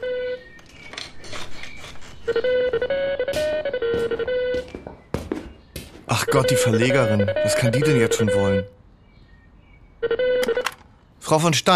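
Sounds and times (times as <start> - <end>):
electronic phone ringtone with melodic tones: 0.0 - 0.5, 2.3 - 4.8, 6.1 - 8.8, 10.0 - 10.7
speech: 2.3 - 3.4, 6.1 - 8.8, 11.3 - 11.7.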